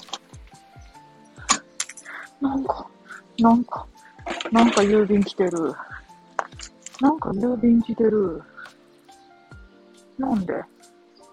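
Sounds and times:
keys jangling while unlocking a door: 0:01.4 - 0:02.2, 0:06.4 - 0:07.0
sharp metallic rattles: 0:01.4 - 0:02.3, 0:04.0 - 0:07.3
speech: 0:02.4 - 0:03.9, 0:04.5 - 0:05.9, 0:07.0 - 0:08.5, 0:10.2 - 0:10.7.

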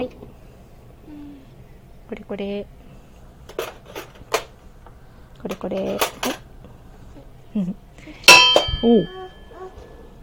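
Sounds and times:
speech: 0:00.0 - 0:00.2, 0:02.1 - 0:02.8, 0:05.4 - 0:06.4, 0:07.6 - 0:08.2, 0:08.8 - 0:09.3
faint hum: 0:00.0 - 0:10.2
metal spoon clinking against a cooking pot as meat is put in: 0:08.3 - 0:09.4.

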